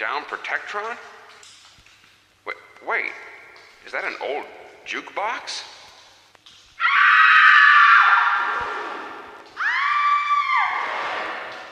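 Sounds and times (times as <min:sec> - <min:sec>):
speech: 0:00.0 - 0:01.5, 0:02.4 - 0:05.8
recorded screams played as Halloween effect: 0:06.8 - 0:11.3.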